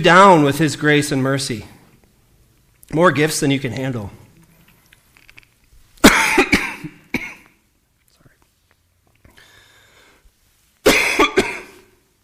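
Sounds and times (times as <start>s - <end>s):
speech: 0.0s - 1.7s, 2.9s - 4.2s
person coughing harshly: 6.0s - 7.6s, 10.9s - 12.0s
faint breathy sounds: 9.2s - 10.4s.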